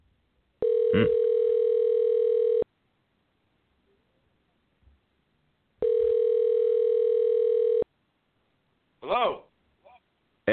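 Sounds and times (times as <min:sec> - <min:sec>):
telephone dial tone: 0:00.6 - 0:02.6, 0:05.8 - 0:07.8
quiet vocal sound: 0:00.8 - 0:01.4
speech: 0:00.9 - 0:01.2.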